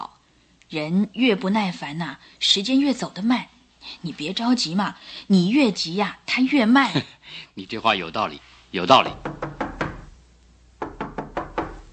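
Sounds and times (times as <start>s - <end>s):
speech: 0.7s - 9.4s
knocking on a door: 9.0s - 10.1s, 10.8s - 11.9s.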